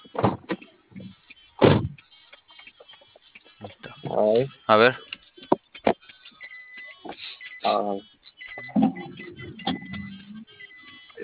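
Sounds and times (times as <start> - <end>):
speech: 4.2 - 5.1, 7.7 - 8.1
door opening and closing: 8.6 - 10.2.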